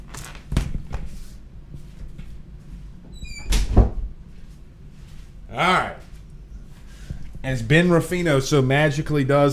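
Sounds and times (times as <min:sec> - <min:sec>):
shuffling sounds: 0:00.0 - 0:03.0, 0:04.2 - 0:07.5
door hinge squeak: 0:03.1 - 0:03.7
door shutting with a solid thud: 0:03.2 - 0:04.1
speech: 0:05.6 - 0:05.9, 0:07.4 - 0:09.5.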